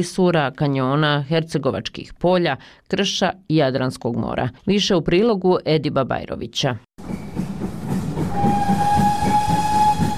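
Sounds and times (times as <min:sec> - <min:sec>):
speech: 0:00.0 - 0:07.2
rumble and clatter of moving narrow-gauge steam train: 0:07.0 - 0:10.1
narrow-gauge steam locomotive whistle on an old tourist railway: 0:08.2 - 0:10.1.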